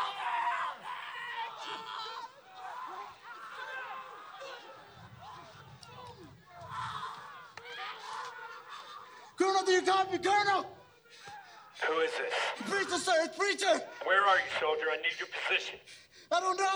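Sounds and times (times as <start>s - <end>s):
laughter: 0.0s - 14.9s
off-screen screams and shouts dubbed into a film battle scene: 0.0s - 15.0s
speech: 9.7s - 10.8s, 11.9s - 16.7s.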